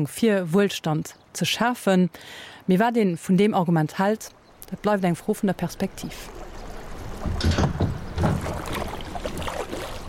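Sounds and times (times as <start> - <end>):
speech: 0.0 - 6.5, 7.2 - 8.4
kayak paddle strokes splashing on a river beside a pontoon: 6.0 - 10.0.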